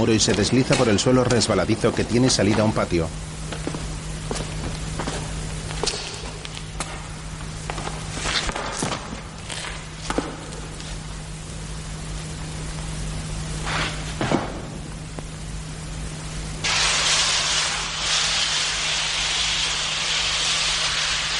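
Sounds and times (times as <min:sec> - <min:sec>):
speech: 0:00.0 - 0:03.4
hissy noise: 0:00.0 - 0:21.3
footsteps walking through stone arches into a tunnel: 0:00.1 - 0:11.0.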